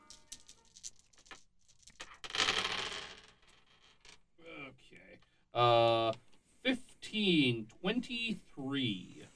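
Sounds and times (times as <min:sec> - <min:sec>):
dice rolled for a tabletop game rattling on a hard surface: 0:00.0 - 0:04.2
people talking: 0:04.4 - 0:09.3.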